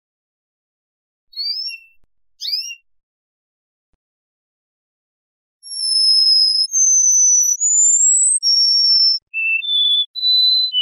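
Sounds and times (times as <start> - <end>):
canary singing high whistled tones: 1.3 - 2.9, 5.6 - 10.8.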